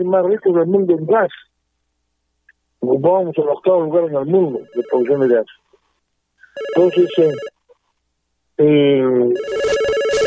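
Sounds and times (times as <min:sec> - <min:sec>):
speech: 0:00.0 - 0:01.5, 0:02.8 - 0:05.6, 0:06.6 - 0:07.5, 0:08.6 - 0:09.8
telephone ringtone for an incoming call: 0:04.5 - 0:05.4, 0:06.5 - 0:07.6, 0:09.4 - 0:10.2.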